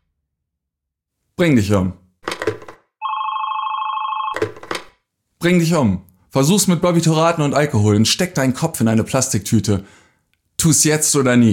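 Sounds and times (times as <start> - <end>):
speech: 1.4 - 2.0, 5.4 - 10.0, 10.6 - 11.5
telephone ringing: 3.0 - 4.7.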